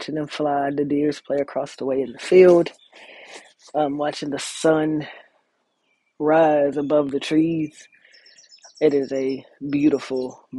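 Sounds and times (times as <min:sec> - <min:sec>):
speech: 0:00.0 - 0:05.2, 0:06.2 - 0:07.9, 0:08.8 - 0:10.5
faint high bird chirps and tweets outdoors in the morning: 0:01.9 - 0:03.8, 0:05.6 - 0:10.5.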